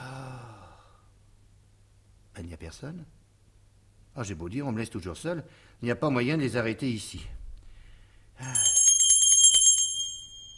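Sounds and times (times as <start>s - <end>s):
speech: 2.4s - 3.2s, 4.2s - 7.4s, 8.4s - 8.7s
small hand bell ringing: 8.4s - 10.5s.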